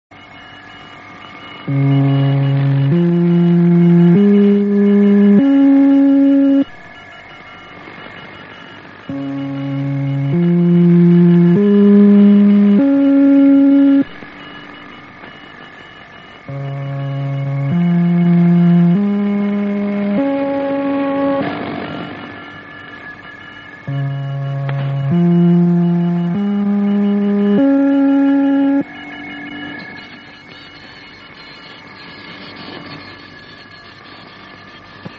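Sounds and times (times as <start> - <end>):
musical scale: 1.7 - 6.7, 9.1 - 14.2, 16.5 - 21.5, 23.9 - 28.9.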